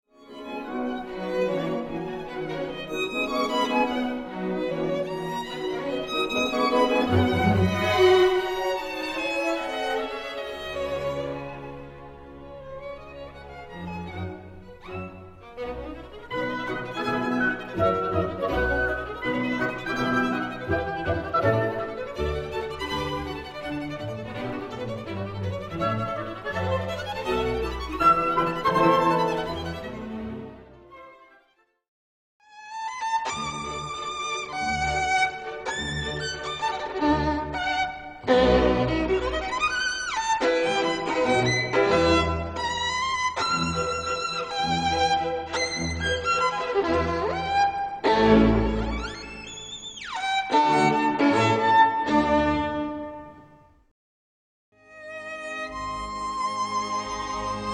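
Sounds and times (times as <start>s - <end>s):
violin: 0.1s - 31.8s, 32.4s - 53.8s, 54.8s - 57.7s.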